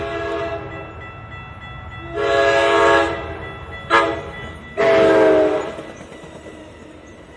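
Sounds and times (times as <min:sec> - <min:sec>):
freight train horn blasts: 0:00.0 - 0:00.8, 0:02.0 - 0:05.9
freight train rumbling: 0:00.0 - 0:07.3.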